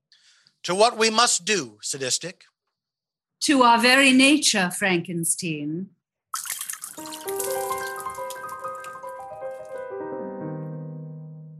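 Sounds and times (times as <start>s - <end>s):
speech: 0.7s - 2.6s, 3.4s - 7.2s
martinis poured out onto the floor: 6.3s - 9.8s.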